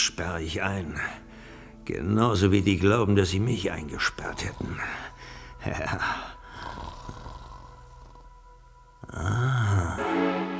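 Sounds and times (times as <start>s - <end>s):
speech: 0.0s - 1.2s, 1.9s - 7.0s, 9.1s - 10.3s
breathy guttural rumbling snoring: 4.2s - 8.4s, 9.0s - 10.5s.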